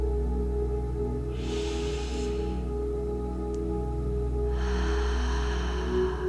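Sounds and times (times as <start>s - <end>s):
steady low ambient drone: 0.0s - 6.2s
big exhale in a guided grounding breathing exercise: 1.3s - 2.8s, 4.5s - 6.2s
slow deep inhale in a guided grounding breathing exercise: 1.3s - 3.5s, 4.3s - 6.2s.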